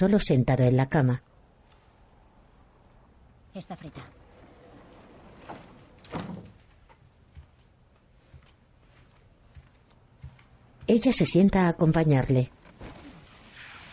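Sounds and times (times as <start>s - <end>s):
speech: 0.0s - 1.3s, 3.6s - 4.2s, 10.9s - 12.6s
door shut in someone's face: 4.7s - 7.0s.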